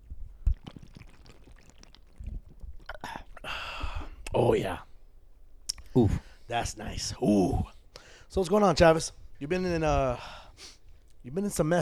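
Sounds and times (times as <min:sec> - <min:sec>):
people sipping and swallowing drinks: 0:00.0 - 0:06.5, 0:09.8 - 0:11.2
breathy exhale: 0:02.9 - 0:04.2, 0:07.9 - 0:08.3
speech: 0:04.4 - 0:04.9, 0:06.0 - 0:11.8.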